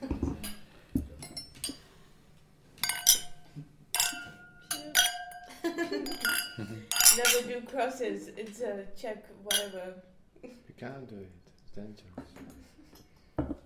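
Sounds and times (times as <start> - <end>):
glasses clinking in a toast: 0.2 - 1.9, 2.8 - 7.6, 9.5 - 9.8
speech: 7.6 - 12.5.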